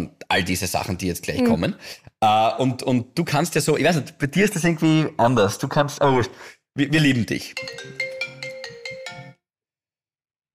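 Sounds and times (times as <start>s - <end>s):
speech: 0.0s - 8.1s
mobile phone ringtone for an incoming call: 7.6s - 9.4s.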